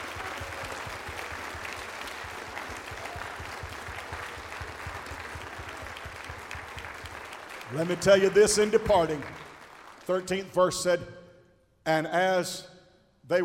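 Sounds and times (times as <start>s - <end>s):
large group clapping hands: 0.0s - 10.6s
speech: 7.7s - 9.4s, 10.1s - 11.2s, 11.9s - 12.7s.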